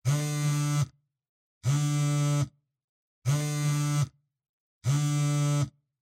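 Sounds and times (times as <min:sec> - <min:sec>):
cell phone vibrating on cloth: 0:00.0 - 0:01.0, 0:01.6 - 0:02.6, 0:03.2 - 0:04.2, 0:04.8 - 0:05.9.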